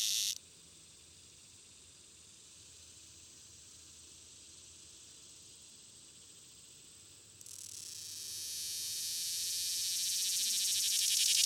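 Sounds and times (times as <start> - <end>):
swamp cicada buzzing with a dry high pulsing rattle: 0.0 - 0.4, 7.5 - 11.4.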